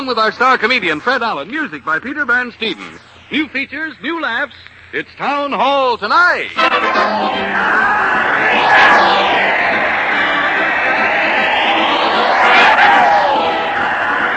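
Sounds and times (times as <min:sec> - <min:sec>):
speech: 0:00.0 - 0:09.6
large crowd cheering at a parade: 0:06.6 - 0:14.3.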